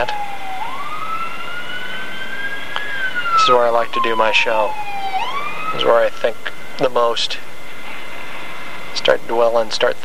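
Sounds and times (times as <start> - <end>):
police car siren wailing as it passes: 0.0 - 6.8
road and engine noise inside a car: 0.0 - 10.0
speech: 3.4 - 4.9, 5.7 - 7.5, 9.0 - 10.0.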